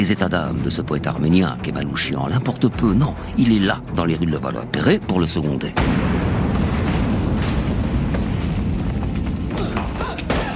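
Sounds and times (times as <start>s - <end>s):
speech: 0.0s - 6.4s
grenade explosion among soldiers in a city street: 5.8s - 10.5s.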